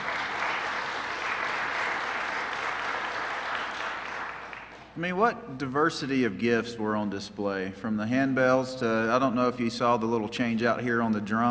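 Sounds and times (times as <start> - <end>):
audience applauding: 0.0 - 5.0
speech: 5.0 - 11.4.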